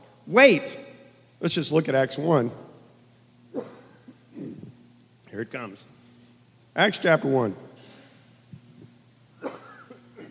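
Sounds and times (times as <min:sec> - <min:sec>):
low steady hum: 0:00.0 - 0:10.3
speech: 0:00.3 - 0:00.8, 0:01.4 - 0:02.7, 0:05.4 - 0:06.0, 0:06.8 - 0:07.7
cough during a church sermon: 0:03.5 - 0:04.7, 0:09.4 - 0:10.3.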